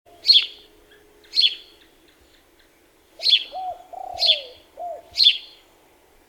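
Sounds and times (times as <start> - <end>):
house sparrow Passer domesticus chirps: 0.1 - 5.6
low cooing: 3.2 - 5.4.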